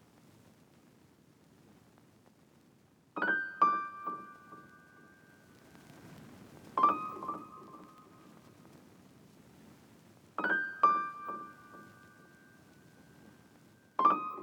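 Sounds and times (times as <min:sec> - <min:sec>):
dark piano melody loop in G minor: 0:03.2 - 0:08.5, 0:10.4 - 0:14.4.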